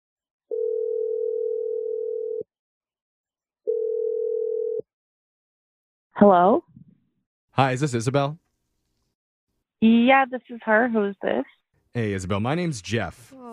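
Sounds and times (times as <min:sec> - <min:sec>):
landline telephone dial tone: 0:00.5 - 0:02.4, 0:03.7 - 0:04.8
speech: 0:06.2 - 0:06.6, 0:07.6 - 0:08.4, 0:09.8 - 0:13.5.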